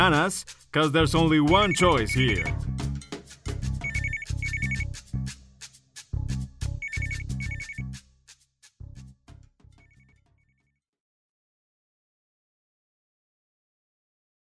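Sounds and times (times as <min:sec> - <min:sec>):
speech: 0:00.0 - 0:02.9
thumping rhythmic backing: 0:00.0 - 0:08.0
telephone ringing in double trills: 0:03.8 - 0:04.8, 0:06.8 - 0:07.8.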